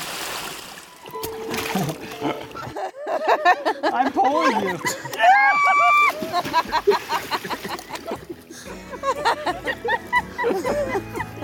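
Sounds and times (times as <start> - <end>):
river water splashing as a raft moves through rapids on the Colorado River: 0.0 - 2.3, 5.6 - 8.6
speech: 1.7 - 7.5, 9.0 - 11.4
laughter: 1.7 - 11.4.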